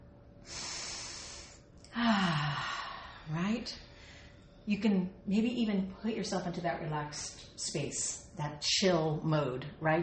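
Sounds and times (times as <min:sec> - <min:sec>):
person taking a deep breath during a relaxation exercise: 0:00.4 - 0:04.5
faint voiced sigh falling in pitch: 0:00.5 - 0:03.3
speech: 0:03.3 - 0:03.9, 0:04.7 - 0:10.0.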